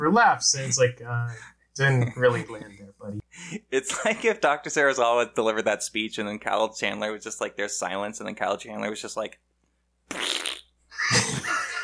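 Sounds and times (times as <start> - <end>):
speech: 0.0 - 9.5
person imitating farting as a mocking joke: 10.1 - 10.8.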